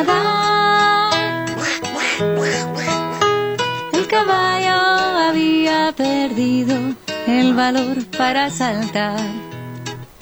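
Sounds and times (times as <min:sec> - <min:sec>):
duck quacking: 0:00.0 - 0:03.9
steady humming tone: 0:00.0 - 0:10.1
speech: 0:05.9 - 0:09.5.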